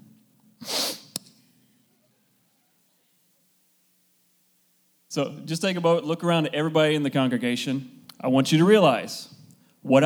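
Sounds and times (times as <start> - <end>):
person giving exaggerated judgmental nasal sniff: 0.6 - 1.2
speech: 5.1 - 10.0.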